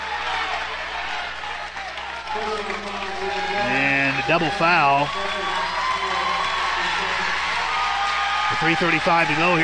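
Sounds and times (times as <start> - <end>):
basketball gym crowd roaring and cheering: 0.0 - 9.6
speech: 2.3 - 3.7, 4.3 - 5.6, 8.6 - 9.6
announcer talking over a basketball crowd: 2.4 - 5.7, 8.5 - 9.6.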